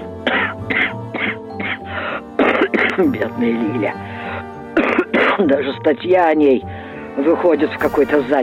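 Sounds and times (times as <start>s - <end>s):
harsh raspy coughing fit: 0.2s - 3.2s, 4.7s - 5.7s
speech: 3.0s - 4.1s, 5.4s - 8.4s.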